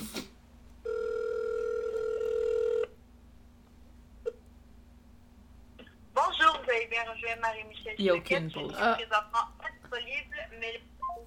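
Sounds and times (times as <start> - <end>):
quiet hum: 0.0 - 11.2
phone call electronic ring tone over speakerphone: 0.8 - 2.9
speech: 7.0 - 10.9.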